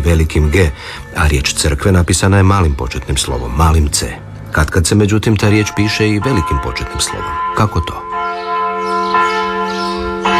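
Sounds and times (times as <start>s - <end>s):
speech: 0.0s - 8.1s
church bells ringing in Marija Bistrica: 2.4s - 10.3s.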